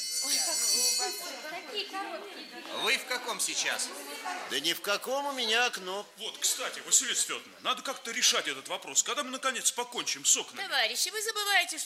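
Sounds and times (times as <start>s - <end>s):
electric school bell ringing: 0.0s - 1.7s
speech: 0.0s - 11.8s.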